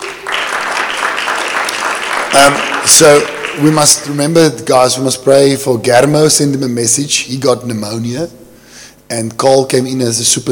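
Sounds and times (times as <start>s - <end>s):
audience clapping for a school worship band: 0.0s - 4.2s
speech: 2.4s - 8.4s, 9.1s - 10.5s.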